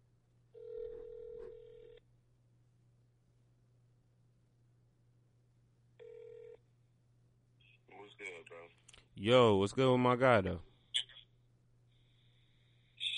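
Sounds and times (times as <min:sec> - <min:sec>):
electronic phone ring tones of an outgoing call: 0:00.6 - 0:02.0, 0:06.0 - 0:06.6
speech: 0:08.2 - 0:10.7.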